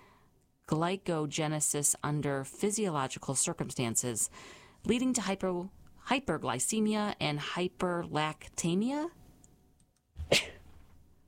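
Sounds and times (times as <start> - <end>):
speech: 0.7 - 9.2, 10.3 - 10.5
person sneezing: 10.2 - 10.7.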